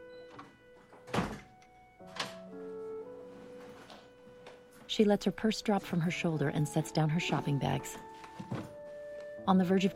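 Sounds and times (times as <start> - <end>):
door shutting with a solid thud: 1.0 - 1.5
speech: 4.9 - 8.1, 9.5 - 9.9.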